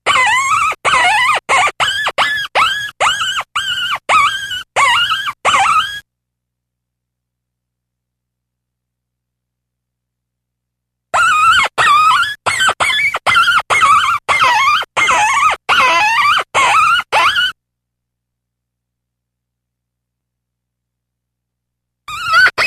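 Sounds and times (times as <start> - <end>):
fox giving sharp high harmonic yelps: 0.0 - 6.0, 11.1 - 17.6, 22.1 - 22.6.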